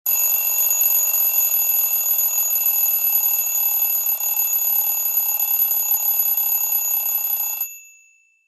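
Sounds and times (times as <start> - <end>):
classic Sony Ericsson phone alarm tone: 0.1 - 7.8.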